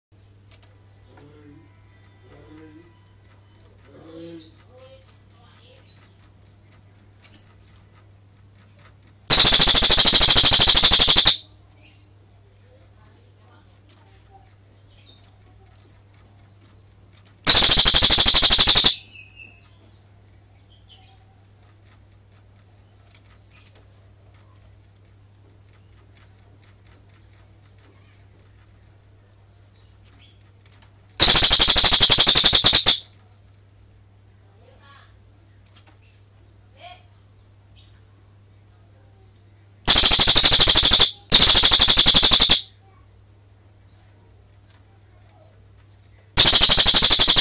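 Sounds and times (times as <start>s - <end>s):
cililin bird long rolling trill: 9.3s - 11.4s, 17.5s - 19.0s, 31.2s - 33.0s, 39.9s - 42.7s, 46.4s - 47.3s.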